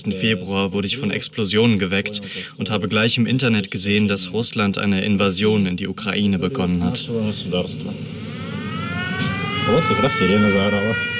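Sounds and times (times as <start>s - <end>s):
speech: 0.0s - 8.3s, 9.7s - 11.1s
air-raid siren wailing in wartime Zaporizhzhia, Ukraine: 7.8s - 11.1s.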